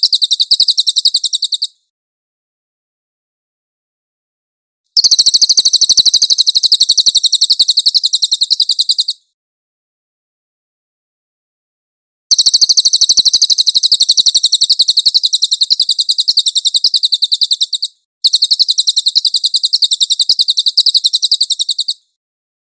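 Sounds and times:
cililin song with thin high trill: 0.0s - 1.8s, 5.0s - 9.3s, 12.3s - 22.2s.

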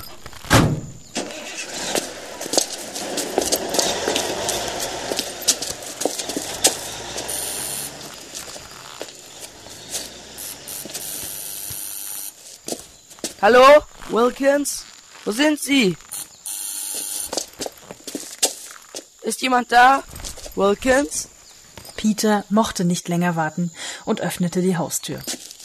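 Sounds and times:
car starting and driving away: 1.0s - 12.4s
speech: 13.4s - 16.0s, 19.3s - 21.3s, 22.0s - 25.4s.

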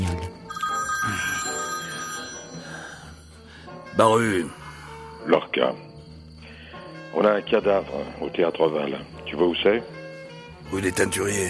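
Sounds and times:
mobile phone ringing on a rusty scrap-metal table: 0.5s - 3.5s
speech: 4.0s - 4.6s, 5.2s - 5.9s, 7.1s - 10.0s, 10.7s - 11.4s.

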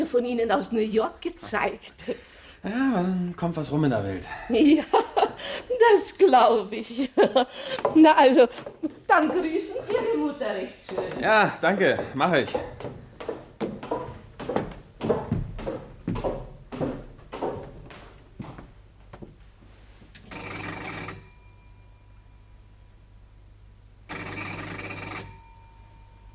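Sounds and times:
speech: 0.0s - 13.4s
irregular thuds: 12.0s - 19.4s
electric doorbell ringing at an apartment door: 20.2s - 22.9s, 24.1s - 26.3s.

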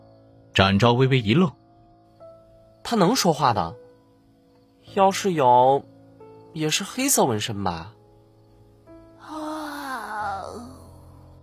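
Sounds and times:
speech: 0.6s - 1.6s, 2.8s - 3.8s, 4.9s - 5.9s, 6.6s - 8.0s
small child giving a long yawn: 9.2s - 11.2s.

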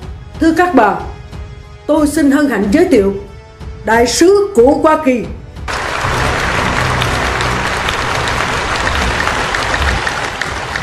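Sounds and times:
speech: 0.4s - 1.1s, 1.9s - 3.2s, 3.8s - 5.4s
large crowd applauding at a formal gathering: 5.7s - 10.8s.

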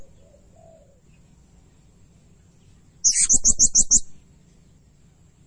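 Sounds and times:
blue-crowned hanging parrot shrill calls: 3.0s - 4.1s.

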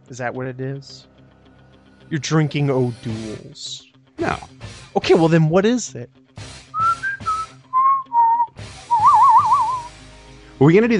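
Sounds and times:
speech: 0.1s - 1.1s, 2.1s - 6.2s, 10.6s - 10.9s
person whistling a short tune: 6.8s - 9.9s.

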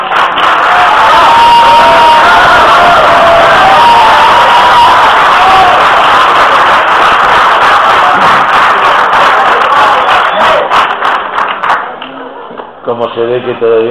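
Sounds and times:
audience applause greeting an author at a talk: 0.0s - 12.7s
speech: 13.2s - 13.8s.

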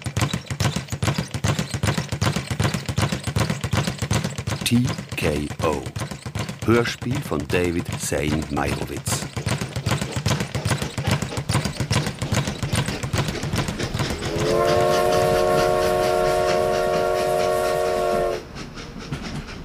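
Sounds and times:
train wheels clattering on rails: 0.0s - 19.6s
speech: 4.7s - 9.4s
long steady harmonic train horn tone: 14.3s - 18.5s.

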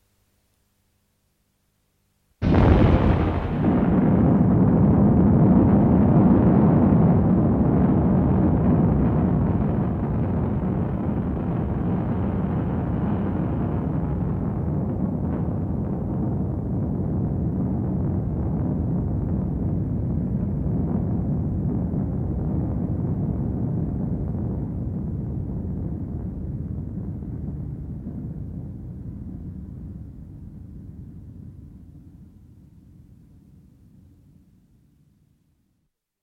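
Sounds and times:
heavy explosion with long roaring rumble: 2.4s - 28.8s.

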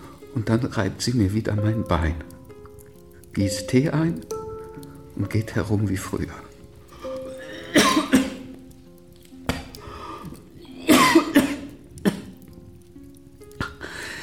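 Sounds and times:
speech: 0.4s - 2.3s, 3.4s - 4.4s, 5.2s - 6.5s
person coughing harshly from a persistent cough: 7.4s - 8.5s, 10.8s - 12.4s.

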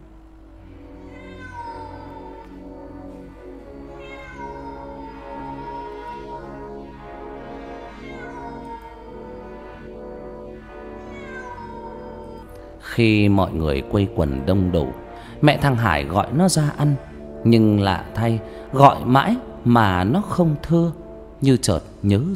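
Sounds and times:
cat yowling piteously upstairs: 1.0s - 2.6s, 3.8s - 9.7s, 10.9s - 12.7s
speech: 13.0s - 22.3s.

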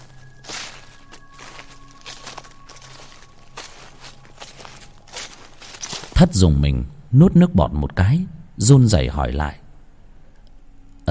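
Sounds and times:
dry branches snapping underfoot: 0.0s - 6.2s
footsteps crunching over forest ground: 0.0s - 6.4s
speech: 6.2s - 9.6s.

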